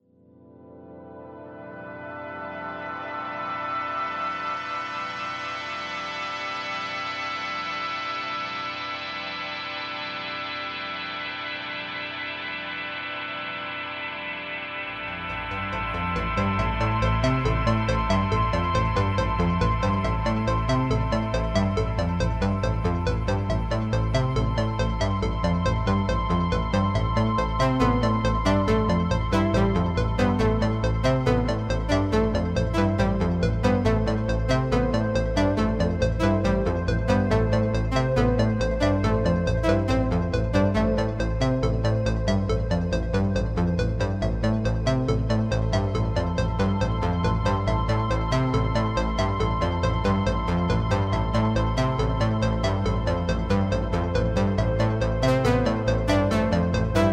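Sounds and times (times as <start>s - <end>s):
Oberheim synthesizer: 0.0s - 57.1s.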